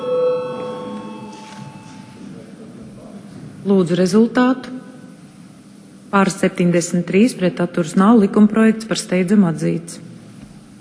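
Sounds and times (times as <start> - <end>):
parliamentary voting bell ringing before a vote: 0.0 - 2.2
speech: 3.6 - 4.7, 6.1 - 10.1.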